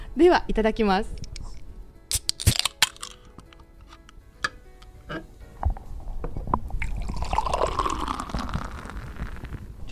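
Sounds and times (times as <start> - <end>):
speech: 0.2 - 1.3
can of non-alcoholic beer snapping and hissing open: 2.1 - 5.3, 6.8 - 9.6
non-alcoholic beer pouring into a glass with foamy gurgle: 6.8 - 9.6.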